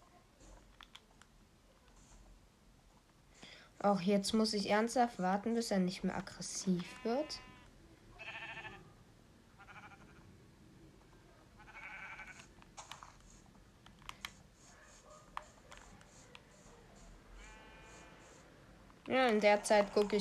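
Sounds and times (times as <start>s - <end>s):
keyboard taps clicking: 0.6s - 2.0s, 12.6s - 14.4s, 15.3s - 16.5s
speech: 3.8s - 7.5s, 19.3s - 20.2s
video game sheep bleating: 6.8s - 8.9s, 9.6s - 10.2s, 11.6s - 12.5s, 17.4s - 18.4s.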